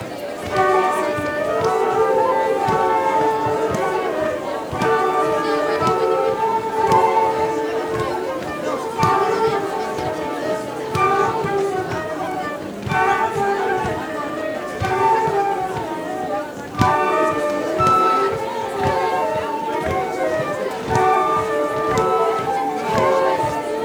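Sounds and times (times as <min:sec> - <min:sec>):
flutes playing folk dance music at a festival: 0:00.0 - 0:23.8.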